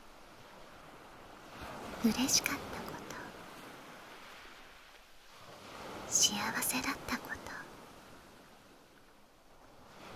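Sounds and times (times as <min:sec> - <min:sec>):
ocean waves washing onto a shore: 0:00.0 - 0:10.1
speech: 0:02.0 - 0:02.7, 0:06.2 - 0:07.2.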